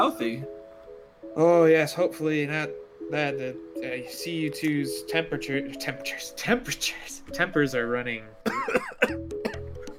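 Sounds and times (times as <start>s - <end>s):
speech: 0.0s - 0.6s, 1.3s - 9.4s
harsh raspy coughs: 8.5s - 9.7s.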